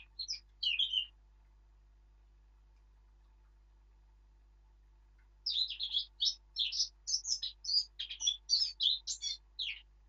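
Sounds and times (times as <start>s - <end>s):
Eurasian blackcap Sylvia atricapilla singing: 0.0s - 1.2s, 5.4s - 9.9s.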